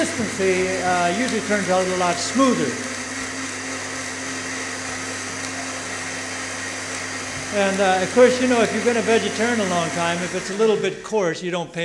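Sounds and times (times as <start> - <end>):
kitchen blender blending blanched almonds at high speed: 0.0 - 11.3
speech: 0.1 - 2.9, 7.5 - 11.8.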